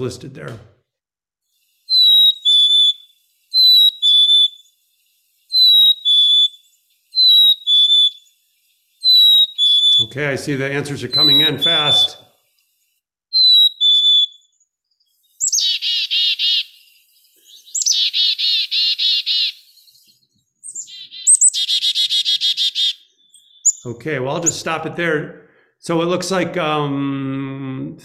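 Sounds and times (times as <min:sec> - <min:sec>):
speech: 0:00.0 - 0:00.7, 0:10.1 - 0:12.3, 0:23.8 - 0:28.0
black-capped chickadee whistling two-note song: 0:01.6 - 0:12.4, 0:13.3 - 0:24.8.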